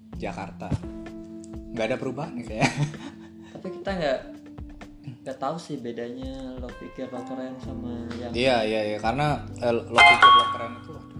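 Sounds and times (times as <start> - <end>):
speech: 0.2 - 1.1, 1.7 - 4.4, 5.0 - 11.1
laughter: 2.6 - 3.3
short electronic notification chime: 10.0 - 10.8.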